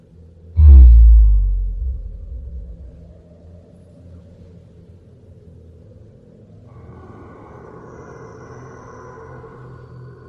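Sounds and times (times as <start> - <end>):
deep heavy rumble of ground shaking: 0.6 - 3.1.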